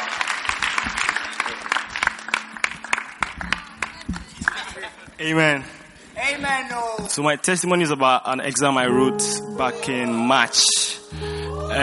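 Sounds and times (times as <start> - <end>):
audience applauding: 0.0 - 5.0
speech: 5.2 - 11.8.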